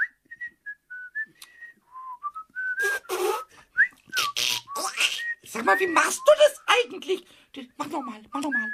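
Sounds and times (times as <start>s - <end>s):
carpenter whistling a wandering melody: 0.0s - 6.8s, 7.8s - 8.7s
speech: 5.6s - 8.7s.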